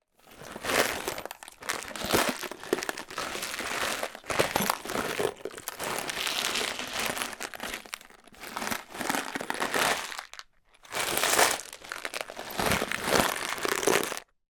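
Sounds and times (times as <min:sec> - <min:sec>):
industrial screws and nails in plastic box with lid moving: 0:00.2 - 0:14.3.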